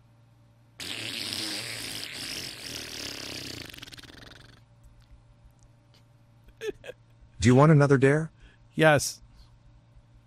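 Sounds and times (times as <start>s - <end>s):
mouth-made fart noise made on a dare: 0.8s - 4.7s
speech: 7.4s - 9.2s.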